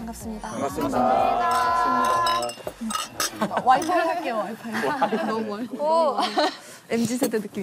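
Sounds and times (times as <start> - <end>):
speech: 0.1 - 7.6
glasses clinking together in a toast: 0.8 - 4.2
laughter: 3.2 - 6.7.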